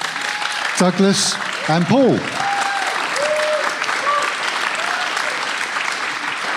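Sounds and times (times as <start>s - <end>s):
faint whoops and cheers: 0.0s - 0.8s, 1.5s - 5.6s
audience applause welcoming volunteers: 0.0s - 6.5s
speech: 0.8s - 2.4s.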